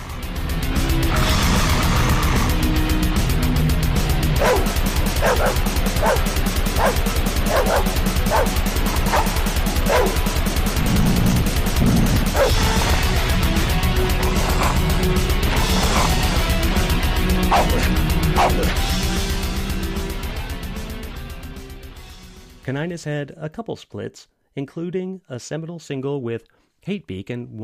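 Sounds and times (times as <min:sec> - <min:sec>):
two trained pet dogs barking, snarling and growling as lead vocals: 0:00.0 - 0:19.9
distorted heavy metal guitars: 0:00.0 - 0:22.2
fast-paced heavy metal with pounding drums and distorted guitars: 0:00.0 - 0:22.6
speech: 0:22.8 - 0:27.6.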